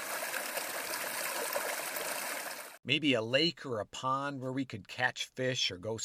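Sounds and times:
creek water flowing with soft continuous babbling rush: 0.0s - 2.8s
speech: 2.9s - 6.0s.

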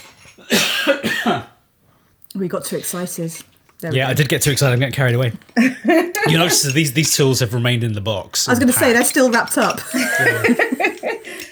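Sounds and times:
person coughing: 0.4s - 1.6s
speech: 2.4s - 10.9s
laughter: 5.6s - 7.0s, 9.8s - 11.5s.

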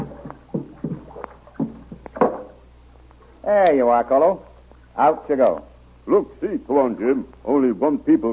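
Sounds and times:
canoe paddles dipping into water: 0.0s - 2.6s
low steady hum: 0.0s - 8.3s
speech: 3.5s - 8.3s.

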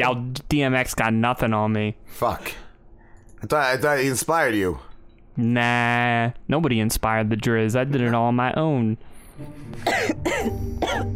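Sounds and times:
speech: 0.0s - 2.6s, 3.4s - 11.1s
man giving harsh raspy coughs: 9.8s - 11.1s.

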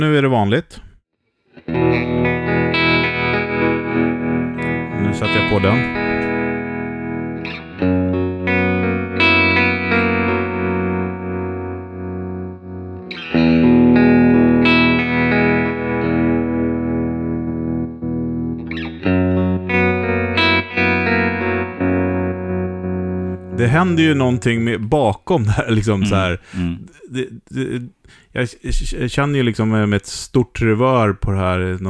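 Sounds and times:
speech: 0.0s - 0.9s, 5.1s - 6.0s, 7.8s - 8.0s, 23.7s - 31.8s
electric guitar chords through a triangle-wave modulation effect: 1.6s - 24.4s.

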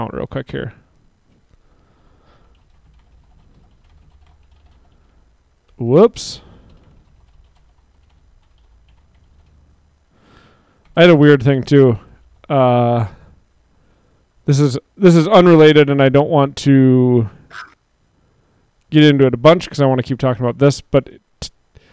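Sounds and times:
speech: 0.0s - 0.8s, 5.8s - 6.5s, 11.0s - 13.2s, 14.5s - 17.7s, 18.9s - 21.5s
someone typing a tweet on a computer keyboard: 2.4s - 5.1s, 6.6s - 9.6s.

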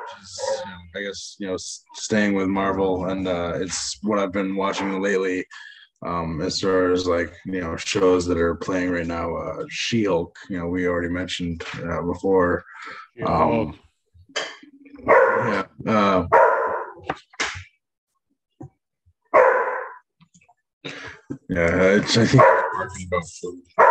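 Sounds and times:
dog barking in a kitchen: 0.0s - 0.7s, 15.0s - 15.6s, 16.3s - 17.0s, 19.4s - 20.0s, 22.3s - 22.9s
speech: 0.1s - 17.3s, 21.5s - 23.9s.

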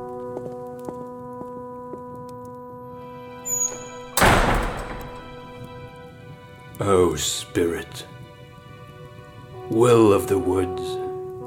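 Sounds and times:
heavy door thudding shut: 3.5s - 5.9s
speech: 6.8s - 8.2s, 9.7s - 11.0s.

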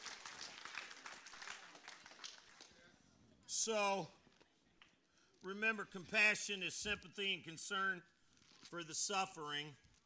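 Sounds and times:
church audience applauding in the sanctuary: 0.0s - 2.7s
speech: 3.6s - 4.2s, 5.4s - 8.1s, 8.7s - 9.8s.

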